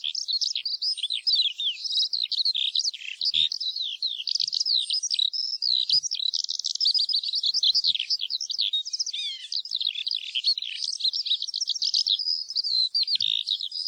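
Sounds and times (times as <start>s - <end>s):
Eurasian skylark singing: 0.0s - 13.8s.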